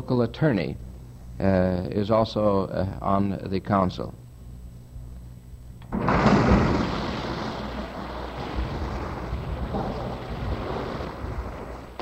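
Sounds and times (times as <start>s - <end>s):
speech: 0.0s - 4.2s
divers splashing in an indoor swimming pool: 6.0s - 12.0s.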